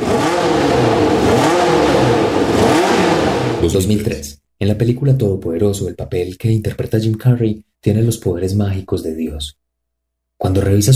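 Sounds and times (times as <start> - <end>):
1982 Formula 1 race car engine revving: 0.0 - 3.8
speech: 3.7 - 9.6, 10.4 - 10.9.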